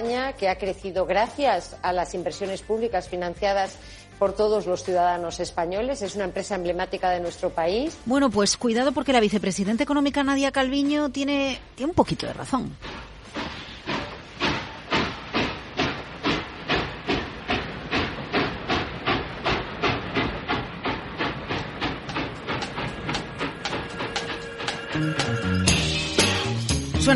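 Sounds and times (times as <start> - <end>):
speech: 0.0 - 13.0
steam train chuffing: 12.8 - 26.8.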